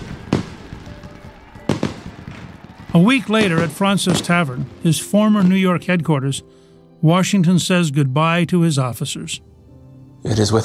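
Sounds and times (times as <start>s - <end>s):
fireworks bursts: 0.0s - 7.4s
crowd murmur: 0.0s - 10.6s
speech: 2.9s - 9.5s, 10.2s - 10.6s.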